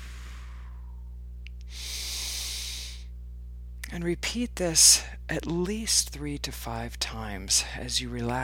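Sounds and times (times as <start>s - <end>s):
breathy exhale: 0.0s - 1.1s, 1.7s - 3.1s
long airy deep inhale: 0.0s - 3.1s
speech: 4.0s - 8.4s.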